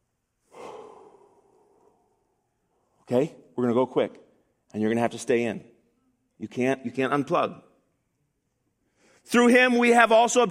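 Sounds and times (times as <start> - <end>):
deep breath: 0.4 - 2.8, 8.8 - 9.3
speech: 3.1 - 5.7, 6.4 - 7.7, 9.2 - 10.4.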